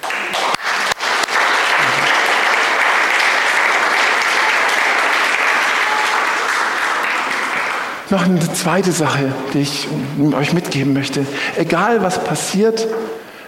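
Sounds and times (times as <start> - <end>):
crowd applauding: 0.0 - 9.6
speech: 8.1 - 13.2.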